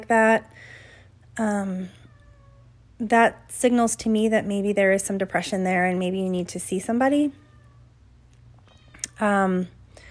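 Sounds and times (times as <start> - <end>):
speech: 0.0 - 0.8, 1.4 - 2.0, 3.0 - 7.4, 9.2 - 9.8
pet cat meowing: 7.4 - 7.9, 8.6 - 9.2.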